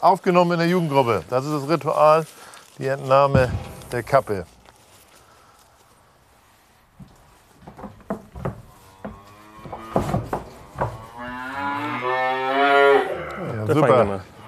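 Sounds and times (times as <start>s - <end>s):
speech: 0.0s - 4.5s, 13.7s - 14.3s
knocks and taps on wood in a barn: 7.0s - 11.0s
calves mooing in a barn kept apart from their mothers: 8.7s - 13.6s.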